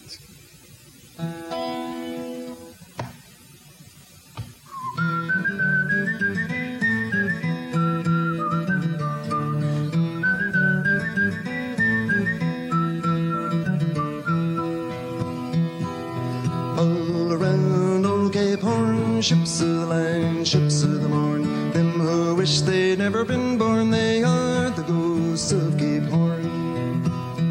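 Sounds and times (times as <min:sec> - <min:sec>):
speech: 0:01.2 - 0:01.4
person whistling a lilting tin-whistle-like melody: 0:04.7 - 0:15.3
warm continuous musical accompaniment: 0:04.7 - 0:27.4.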